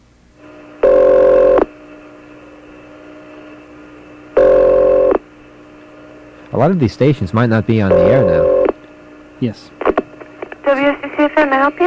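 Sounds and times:
steady phone line hum: 0:00.4 - 0:06.7, 0:07.4 - 0:11.8
telephone ringback tone on an outgoing call: 0:00.8 - 0:01.7, 0:04.4 - 0:05.2, 0:07.9 - 0:08.7
speech: 0:06.5 - 0:08.5, 0:09.4 - 0:09.8, 0:10.7 - 0:11.8.

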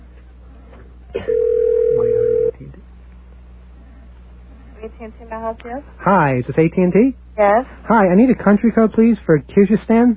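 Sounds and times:
speech: 0:01.2 - 0:01.4, 0:05.0 - 0:10.1
telephone line beep on a call to an operator: 0:01.3 - 0:02.5.

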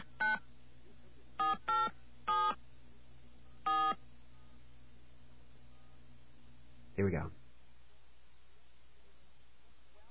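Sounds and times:
faint steady telephone line hum: 0:00.0 - 0:10.1
telephone keypad DTMF tones dialing a number: 0:01.4 - 0:02.6, 0:03.7 - 0:04.0
speech: 0:07.0 - 0:07.4.

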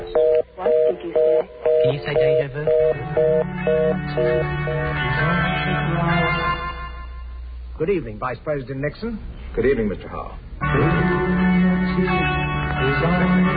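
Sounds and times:
telephone line ringing with electronic tone bursts: 0:00.1 - 0:05.1
speech: 0:01.8 - 0:06.5, 0:07.8 - 0:11.1, 0:12.0 - 0:13.5.

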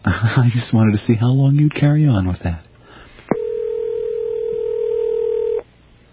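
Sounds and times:
speech: 0:00.2 - 0:02.7
telephone line ringing with steady electronic tone: 0:03.3 - 0:05.6.

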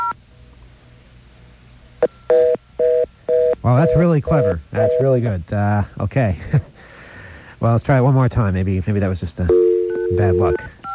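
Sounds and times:
touch-tone telephone keys dialed on a payphone: 0:02.3 - 0:05.2, 0:09.5 - 0:10.9
speech: 0:03.6 - 0:06.7, 0:07.6 - 0:10.6.

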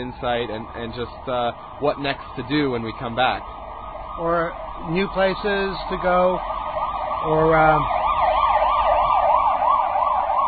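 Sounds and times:
speech: 0:00.0 - 0:03.6, 0:04.2 - 0:06.5, 0:07.2 - 0:08.0
emergency vehicle siren wailing: 0:00.0 - 0:10.4.

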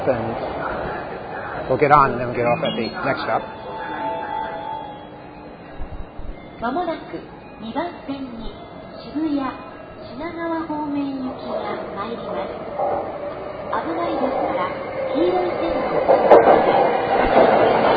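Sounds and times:
speech: 0:00.0 - 0:00.8, 0:01.7 - 0:03.6, 0:06.6 - 0:17.9
train rumbling past on another track: 0:00.0 - 0:17.9
rhythmic clacking of a passing train: 0:11.4 - 0:17.9.

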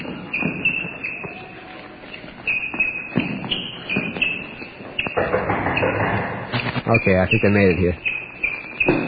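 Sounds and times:
running footsteps: 0:00.0 - 0:07.2
speech: 0:06.9 - 0:08.1.

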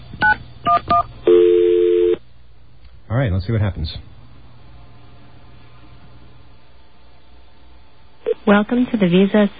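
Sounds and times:
steady electronic telephone tone: 0:00.2 - 0:02.2
speech: 0:03.2 - 0:04.2, 0:08.5 - 0:09.5.

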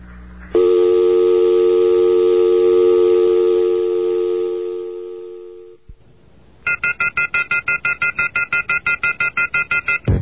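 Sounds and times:
telephone busy signal: 0:00.6 - 0:05.8, 0:06.7 - 0:10.1.

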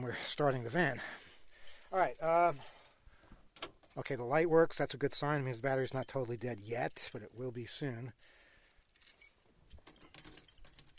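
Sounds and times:
speech: 0:00.0 - 0:01.2, 0:01.9 - 0:02.8, 0:04.0 - 0:08.4
bunch of van keys jangling: 0:01.4 - 0:03.0, 0:05.3 - 0:06.3, 0:06.9 - 0:10.9.

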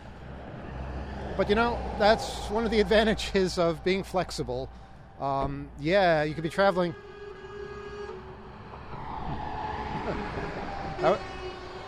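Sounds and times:
passing truck engine drone: 0:00.0 - 0:11.8
steady traffic rumble from a road: 0:00.0 - 0:11.8
speech: 0:01.4 - 0:07.0, 0:11.0 - 0:11.3
horn blast from a passing truck: 0:06.3 - 0:08.9, 0:10.7 - 0:11.8.

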